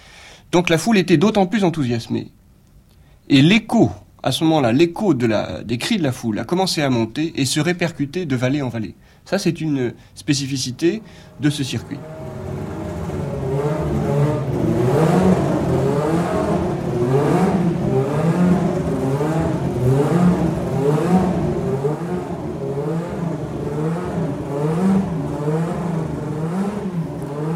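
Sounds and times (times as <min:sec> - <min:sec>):
speech: 0:00.5 - 0:02.4, 0:03.3 - 0:12.4
Formula 1 car engines revving during engine tuning: 0:10.4 - 0:27.5.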